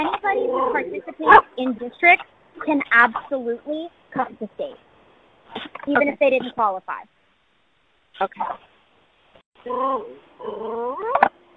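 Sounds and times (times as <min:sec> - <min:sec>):
speech: 0:00.3 - 0:04.9, 0:05.5 - 0:07.2, 0:08.2 - 0:08.7, 0:09.6 - 0:11.4
dog whimpering and whining: 0:09.6 - 0:11.3.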